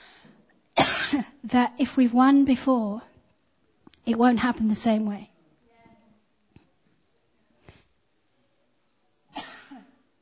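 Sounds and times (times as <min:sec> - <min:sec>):
person coughing: 0:00.8 - 0:01.4, 0:09.3 - 0:10.0
speech: 0:01.1 - 0:03.1, 0:04.1 - 0:05.3.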